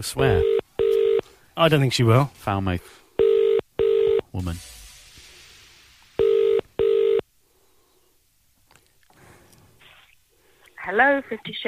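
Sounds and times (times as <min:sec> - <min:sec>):
speech: 0:00.0 - 0:00.6, 0:01.6 - 0:03.0, 0:04.4 - 0:04.7, 0:10.9 - 0:11.6
telephone ringing tone: 0:00.3 - 0:01.2, 0:03.2 - 0:04.2, 0:06.2 - 0:07.2.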